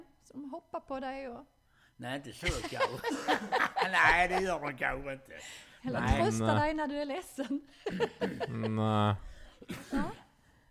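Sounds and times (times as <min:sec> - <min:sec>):
speech: 0:00.3 - 0:10.2
laughter: 0:02.4 - 0:04.8, 0:07.8 - 0:09.2
person coughing: 0:09.6 - 0:10.3.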